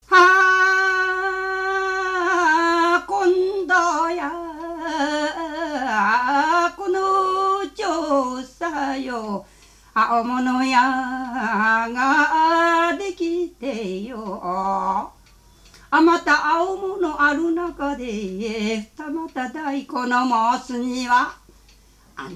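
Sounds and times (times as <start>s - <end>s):
sumo jinku folk song singing in Sosa: 0.0s - 15.1s, 15.8s - 21.4s.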